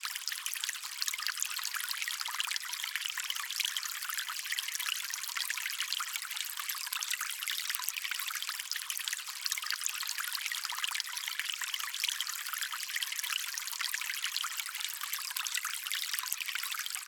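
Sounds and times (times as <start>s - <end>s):
stream water trickling at a beach: 0.0s - 17.0s.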